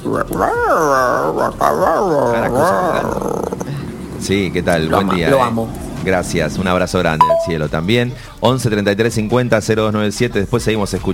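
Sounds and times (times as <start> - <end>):
dog howling and whining in drawn-out talk-like glides: 0.0 - 3.7
speech: 0.0 - 11.1.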